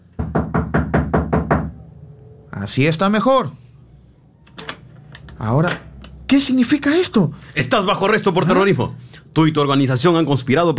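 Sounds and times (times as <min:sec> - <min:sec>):
heavy rapid knocks pounding on a door: 0:00.2 - 0:01.8
speech: 0:02.6 - 0:03.6, 0:05.4 - 0:10.7.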